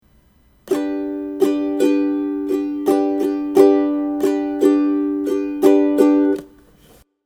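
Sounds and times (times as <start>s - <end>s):
main ukulele strum: 0.7s - 7.0s.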